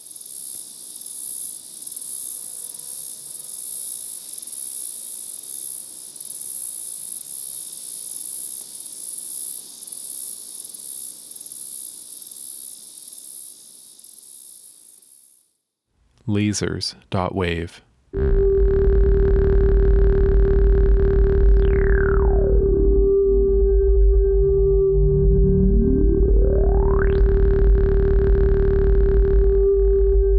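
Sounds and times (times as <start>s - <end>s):
crickets and cicadas droning by a road in Iowa: 0.0s - 15.6s
speech: 16.3s - 18.4s
faint low rumble: 18.2s - 30.3s.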